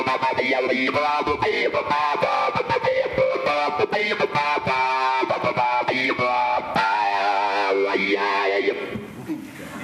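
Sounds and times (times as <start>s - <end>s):
distorted electric guitar riff with filter and volume touch strip effects: 0.0s - 9.0s.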